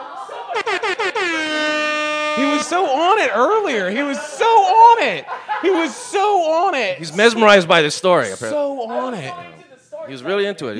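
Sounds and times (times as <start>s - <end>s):
laughter: 0.0s - 7.4s
voice mimicking a brassy air horn: 0.6s - 3.7s
speech: 2.4s - 10.7s.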